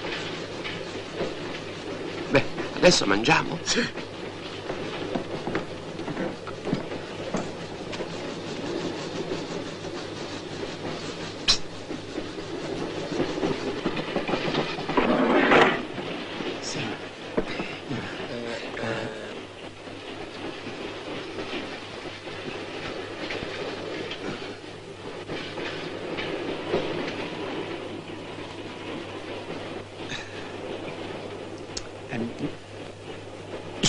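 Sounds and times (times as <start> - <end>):
train rolling on rails with rhythmic clacking: 0.0 - 33.8
speech: 2.3 - 4.0.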